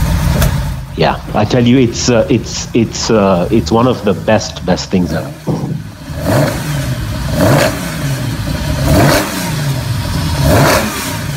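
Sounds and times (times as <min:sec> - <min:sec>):
classic rally car engine revving: 0:00.0 - 0:11.3
speech: 0:01.0 - 0:06.6.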